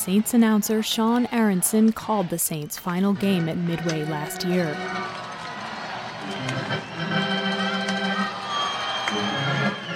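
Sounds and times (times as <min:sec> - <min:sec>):
speech: 0:00.0 - 0:05.2
large baseball crowd roaring and cheering at a ballpark: 0:00.0 - 0:09.9.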